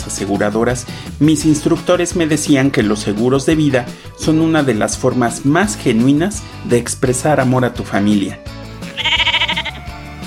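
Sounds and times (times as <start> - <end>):
speech: 0.1 - 8.6
sheep bleating: 8.8 - 10.2.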